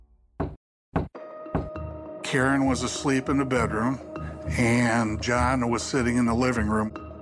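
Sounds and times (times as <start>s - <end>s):
knocking on a door: 0.4s - 1.8s
speech: 2.3s - 7.0s.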